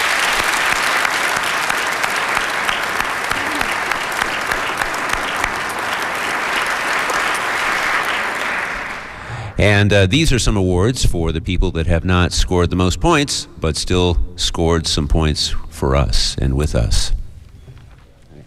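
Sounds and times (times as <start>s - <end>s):
crowd applauding for trivia teams: 0.0s - 9.6s
speech: 9.6s - 17.2s.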